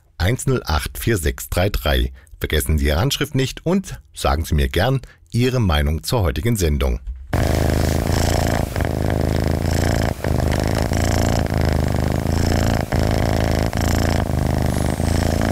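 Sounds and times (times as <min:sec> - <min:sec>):
speech: 0:00.2 - 0:07.8
cat purring loudly: 0:07.4 - 0:15.5.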